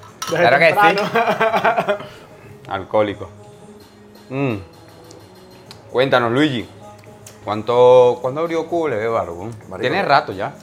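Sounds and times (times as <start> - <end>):
beer glasses clinking in a toast: 0.0 - 1.2
speech: 0.3 - 3.4, 4.3 - 4.7, 5.9 - 6.8, 7.4 - 10.6
laughter: 0.8 - 2.3.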